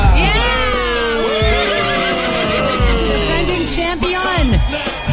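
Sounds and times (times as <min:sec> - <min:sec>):
laughter: 0:00.1 - 0:05.0
racehorse at a derby starting gate neighing: 0:00.3 - 0:03.7.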